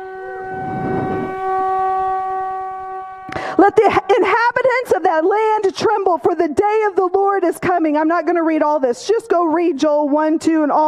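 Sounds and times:
long brassy trumpet blast: 0.0 - 5.6
speech: 3.6 - 10.8.

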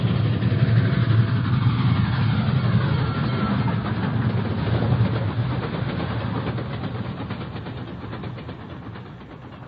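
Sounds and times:
approaching train rushing along the tracks: 0.0 - 9.6.

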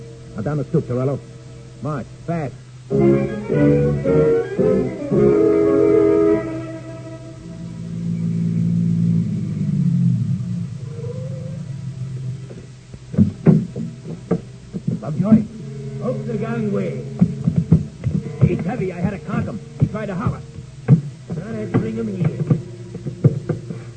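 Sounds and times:
speech: 0.4 - 5.6
car engine revving and rumbling while driving toward the waterfront: 3.6 - 23.9
sharp knocks or thumps: 12.5 - 15.5, 17.2 - 23.9.

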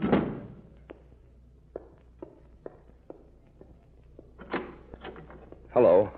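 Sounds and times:
door shutting with a solid thud: 0.0 - 0.6
soft footsteps: 0.7 - 5.8.

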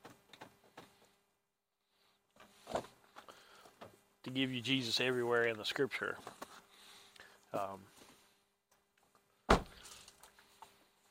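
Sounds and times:
speech: 4.3 - 6.4
door slamming shut with a brief rattle: 9.5 - 9.8.

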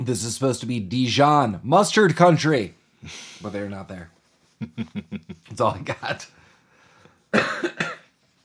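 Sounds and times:
speech: 0.0 - 6.4, 7.3 - 7.9
laughter: 4.6 - 5.5
harsh throaty cough: 7.3 - 8.2.

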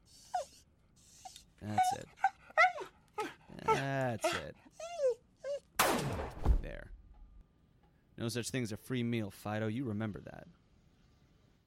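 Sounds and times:
guard dog whimpering: 0.0 - 5.7
speech: 1.6 - 2.2, 4.1 - 4.7, 8.2 - 10.6.

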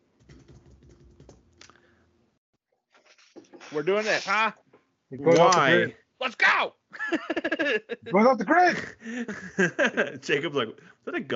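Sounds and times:
computer keyboard clicking: 0.2 - 1.8
speech: 3.7 - 11.3
laughter: 7.0 - 10.4.

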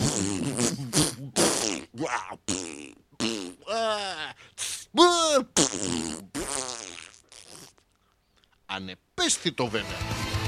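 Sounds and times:
voice imitating a string of farts: 0.0 - 3.8, 5.5 - 7.8
speech: 9.4 - 10.3.

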